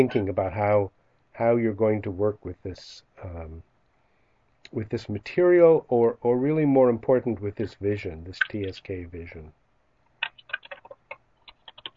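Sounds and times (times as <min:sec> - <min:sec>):
speech: 0:00.0 - 0:03.7, 0:04.7 - 0:09.6
typing on a computer keyboard: 0:10.2 - 0:11.9.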